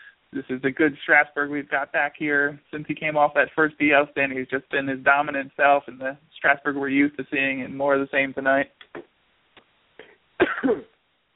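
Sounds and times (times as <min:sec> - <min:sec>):
speech: 0:00.3 - 0:09.1, 0:10.6 - 0:10.9
person coughing: 0:10.0 - 0:11.0
throat clearing: 0:10.0 - 0:11.0.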